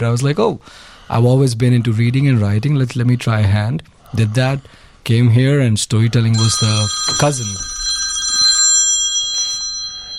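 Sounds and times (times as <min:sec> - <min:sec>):
speech: 0:00.0 - 0:07.7
telephone ringing with electronic trill: 0:06.4 - 0:10.1.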